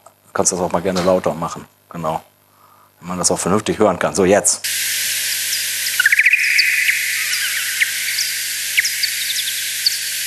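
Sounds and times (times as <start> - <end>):
steady hiss: 0.3 - 10.2
speech: 0.4 - 2.3, 3.0 - 4.8
male bat social calls played ten times slower: 4.7 - 10.2.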